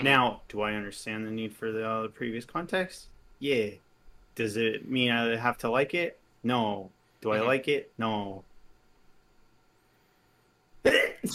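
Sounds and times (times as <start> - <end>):
speech: 0.0 - 3.8, 4.4 - 8.5, 10.8 - 11.3
person sneezing loudly: 10.8 - 11.3.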